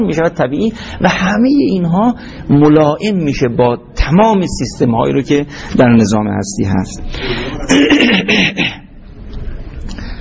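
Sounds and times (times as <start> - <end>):
speech: 0.0 - 8.8
loud fit of coughing: 7.5 - 8.9.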